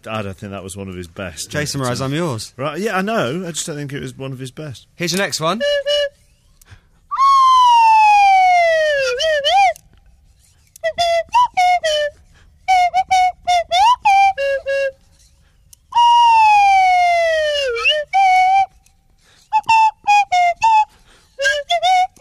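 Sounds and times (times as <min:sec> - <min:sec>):
speech: 0:00.0 - 0:06.2
Swanee slide whistle playing a pop melody: 0:05.4 - 0:09.8, 0:10.7 - 0:22.1.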